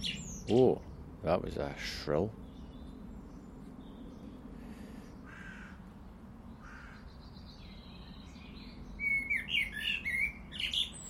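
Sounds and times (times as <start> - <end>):
blackbird singing from a rooftop aerial: 0.0 - 1.4, 2.0 - 4.5, 6.4 - 11.0
low steady outdoor rumble: 0.0 - 11.0
speech: 0.5 - 2.4.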